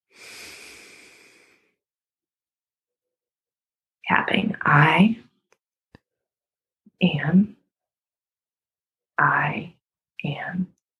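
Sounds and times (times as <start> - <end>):
deep inhale during a calming breathing exercise: 0.0 - 1.8
speech: 4.1 - 5.2, 7.0 - 7.5, 9.2 - 10.8.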